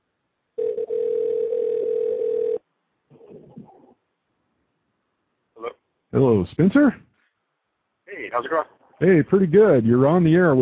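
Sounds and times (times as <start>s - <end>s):
Skype outgoing call electronic ringing tone: 0.6s - 2.6s
speech: 6.2s - 7.1s, 8.4s - 10.6s.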